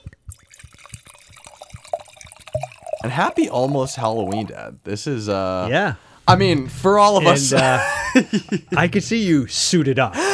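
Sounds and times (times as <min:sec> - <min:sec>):
drink pouring into a glass: 0:00.0 - 0:04.8
glass clink: 0:00.6 - 0:04.5
speech: 0:03.0 - 0:10.3
laughter: 0:06.9 - 0:10.3.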